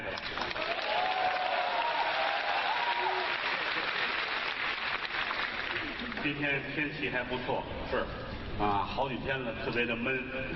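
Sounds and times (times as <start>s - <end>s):
large audience applauding crosstalk comedy performers: 0.0s - 6.3s
speech: 6.2s - 10.5s.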